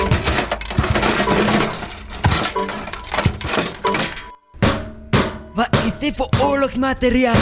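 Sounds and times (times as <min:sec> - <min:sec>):
breaking debris rattling: 0:00.0 - 0:04.4
hammer smashing a record player: 0:00.0 - 0:05.5
speech: 0:06.1 - 0:07.4.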